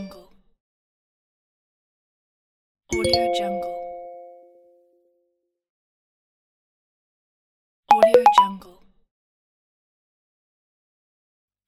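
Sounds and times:
phone notification signal: 0:03.0 - 0:04.6, 0:07.9 - 0:08.6.

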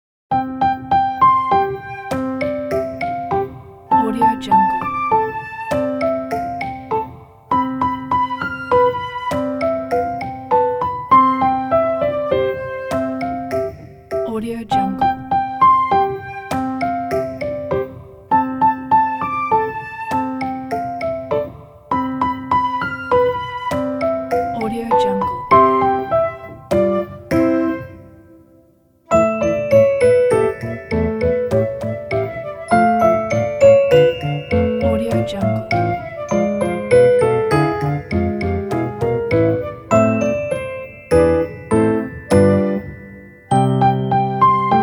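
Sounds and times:
children playing classical piano: 0:00.3 - 0:28.5, 0:29.1 - 0:44.8.

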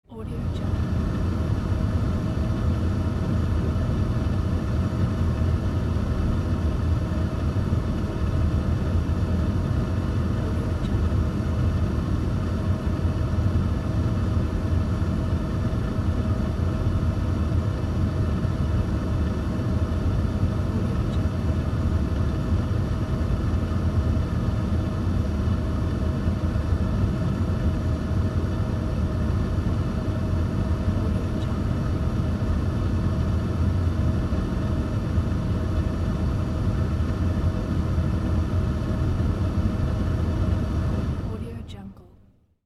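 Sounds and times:
car ventilator fan blowing at mid speed: 0:00.0 - 0:41.8.

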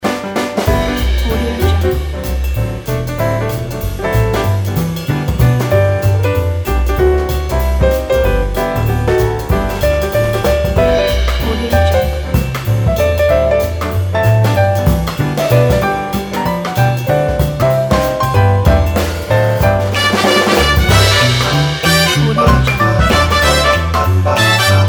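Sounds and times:
lively jazz loop: 0:00.0 - 0:24.8.

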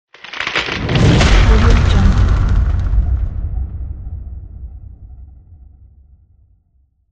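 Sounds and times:
ice cracking: 0:00.1 - 0:03.3.

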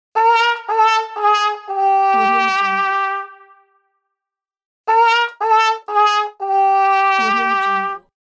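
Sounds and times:
cartoon trumpet wah wah fail: 0:00.2 - 0:03.6, 0:04.9 - 0:08.1.

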